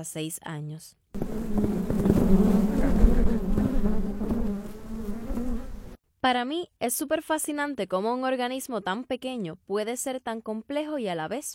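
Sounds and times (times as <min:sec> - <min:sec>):
speech: 0:00.0 - 0:03.2, 0:06.2 - 0:11.5
many honey bees buzzing around their hives: 0:01.2 - 0:06.0.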